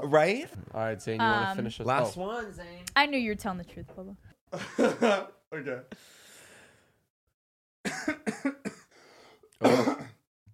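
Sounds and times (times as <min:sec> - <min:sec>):
speech: 0:00.0 - 0:06.2
laughter: 0:04.6 - 0:05.4
person coughing nervously: 0:07.9 - 0:08.9, 0:09.6 - 0:10.2.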